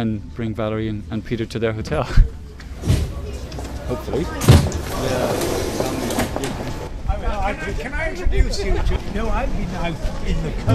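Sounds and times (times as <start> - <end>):
speech: 0.0 - 2.9, 3.9 - 5.8, 7.4 - 10.7
voices murmuring: 2.0 - 10.7
train rumbling into a station: 2.8 - 6.9.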